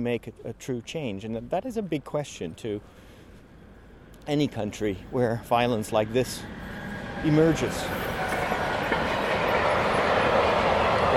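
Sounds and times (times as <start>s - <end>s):
speech: 0.0s - 3.0s, 4.2s - 8.1s
freight train loaded with cars rumbling past: 3.6s - 11.1s.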